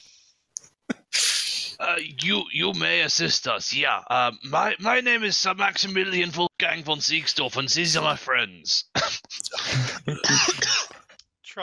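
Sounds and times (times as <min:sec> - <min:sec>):
speech: 0:01.9 - 0:10.4
harsh raspy coughing fit: 0:09.0 - 0:11.2.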